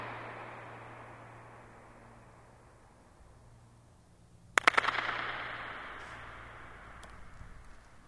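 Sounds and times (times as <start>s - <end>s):
hand claps: 4.6s - 5.3s.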